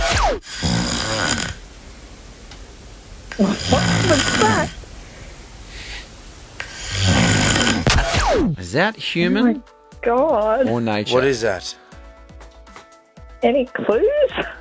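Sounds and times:
person snoring while asleep: 0.4 - 1.6, 3.3 - 4.8, 5.7 - 7.9
speech: 3.4 - 4.8, 8.6 - 11.8, 13.4 - 14.5.

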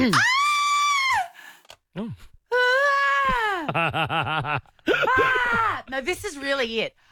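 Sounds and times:
speech: 0.0 - 0.3, 2.0 - 2.3, 3.7 - 7.1
classic female scream sound effect: 0.0 - 1.4, 2.5 - 3.7, 5.0 - 5.8.

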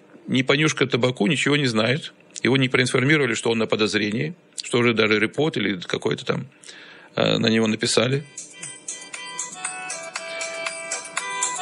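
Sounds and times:
speech: 0.3 - 8.5
phone ringtone: 8.2 - 11.6.

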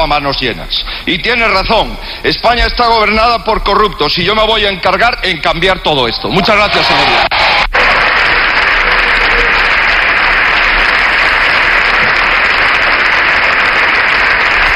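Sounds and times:
speech: 0.0 - 7.4
parliamentary bench applauding a speech: 6.3 - 14.7.

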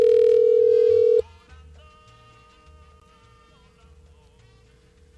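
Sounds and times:
telephone call tones while dialing someone: 0.0 - 1.2.

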